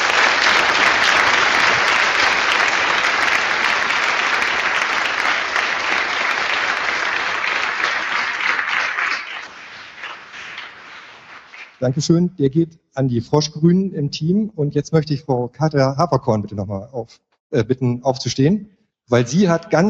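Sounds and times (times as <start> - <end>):
audience applause at a conference: 0.0 - 12.0
speech: 11.8 - 19.8.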